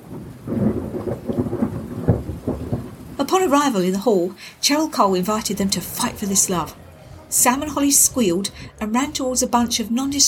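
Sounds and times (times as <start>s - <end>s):
low rumbling roll of distant thunder: 0.0s - 10.2s
steady rain: 0.0s - 10.2s
speech: 3.2s - 10.2s.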